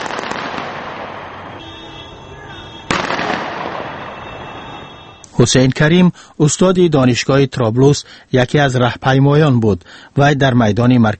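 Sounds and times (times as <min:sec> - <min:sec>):
celebratory gunshot fired into the air at a supporters' rally: 0:00.0 - 0:01.3, 0:02.9 - 0:04.1
speech: 0:05.4 - 0:11.1.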